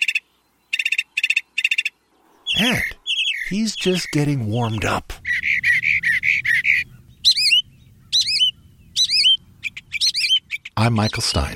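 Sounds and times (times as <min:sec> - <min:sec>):
northern mockingbird singing mimicked calls: 0:00.0 - 0:11.5
low rumbling background: 0:02.3 - 0:11.5
speech: 0:02.6 - 0:05.2, 0:10.8 - 0:11.5.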